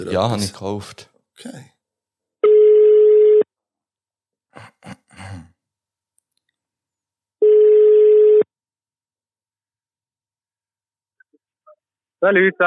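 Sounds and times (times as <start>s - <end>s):
speech: 0.0s - 1.7s, 12.2s - 12.6s
phone ringback tone: 2.4s - 3.4s, 7.4s - 8.5s
person clearing throat: 4.5s - 5.6s.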